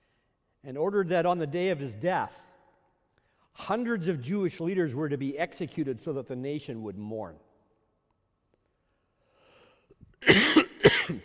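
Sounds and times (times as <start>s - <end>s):
speech: 0.6s - 2.5s, 3.6s - 7.5s
person coughing from a tickle in the throat: 10.2s - 11.2s.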